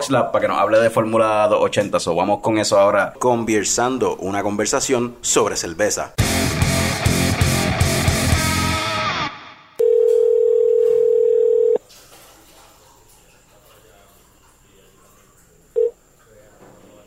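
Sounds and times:
speech: 0.1s - 6.4s
music: 6.2s - 9.5s
quiet line noise: 9.8s - 11.8s, 15.8s - 16.0s
telephone dial tone while placing call: 9.8s - 11.8s.

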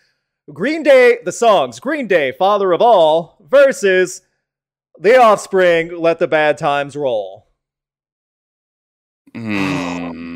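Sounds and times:
speech: 0.5s - 4.3s, 5.0s - 7.4s, 9.3s - 10.0s
people groaning: 9.3s - 10.3s
person gasping: 9.4s - 10.3s.

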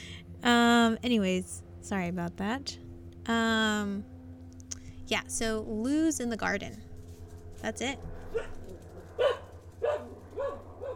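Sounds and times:
constant low hum: 0.0s - 10.9s
speech: 0.4s - 4.1s, 5.1s - 6.9s, 7.6s - 8.6s
dog barking: 8.3s - 10.9s.

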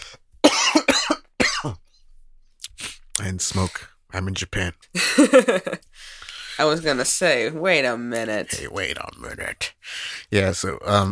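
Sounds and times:
harsh raspy coughing: 0.4s - 1.9s
speech: 3.3s - 11.0s.

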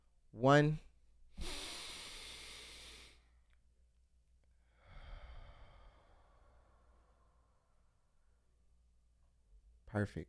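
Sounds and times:
deep breath in through the nose and out through the mouth: 1.3s - 3.4s, 4.5s - 8.6s.

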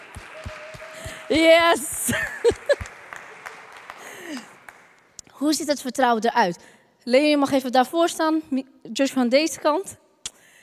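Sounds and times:
cheers and whoops: 0.0s - 3.6s
audience applause: 0.0s - 5.2s
laughter: 1.0s - 4.6s
speech: 1.3s - 2.8s, 5.4s - 10.0s.

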